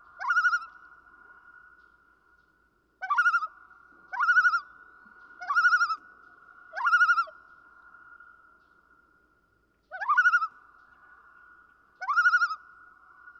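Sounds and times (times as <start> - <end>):
common loon calling with quavering phrases: 0.2 - 0.7, 4.1 - 4.7, 5.4 - 6.0, 6.8 - 7.3, 9.9 - 10.5, 12.0 - 12.6.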